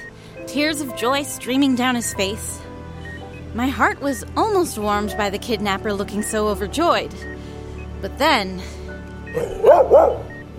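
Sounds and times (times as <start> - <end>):
speech: 0.4 - 2.6, 3.6 - 7.3, 8.0 - 10.2
dog barking gruff barks with a low growly edge: 9.4 - 10.3.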